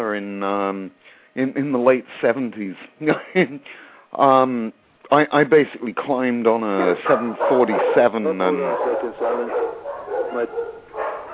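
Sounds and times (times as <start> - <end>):
speech: 0.2 - 10.8
several dogs barking together: 6.7 - 11.3.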